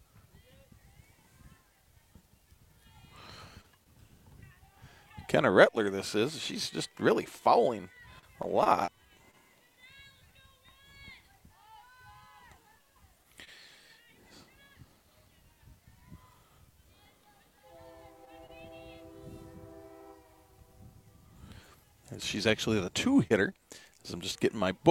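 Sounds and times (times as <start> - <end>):
speech: 5.3 - 8.9, 22.4 - 24.8
train rumbling by: 17.7 - 21.1.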